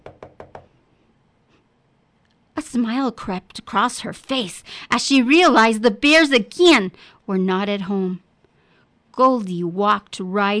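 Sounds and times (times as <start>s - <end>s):
knocking on a wooden cottage door: 0.0s - 0.7s
speech: 2.8s - 8.2s, 9.2s - 10.5s.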